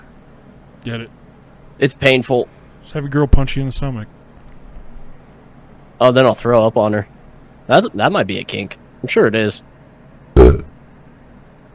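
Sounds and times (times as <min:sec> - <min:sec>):
speech: 0:00.8 - 0:01.2, 0:01.8 - 0:04.2, 0:06.0 - 0:07.1, 0:07.7 - 0:09.7
man burping: 0:10.4 - 0:10.8.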